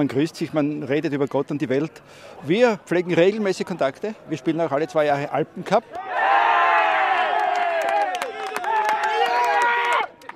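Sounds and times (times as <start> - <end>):
speech: 0.0 - 6.4
football players shouting and cheering after Slovakia beats Poland: 5.9 - 10.2.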